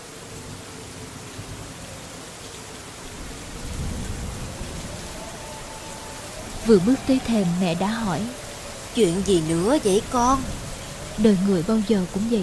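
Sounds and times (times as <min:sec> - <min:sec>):
heavy rain as a storm approaches: 0:00.0 - 0:12.4
low thunder rumble: 0:03.0 - 0:12.4
speech: 0:06.6 - 0:08.4, 0:09.0 - 0:10.6, 0:11.2 - 0:12.4.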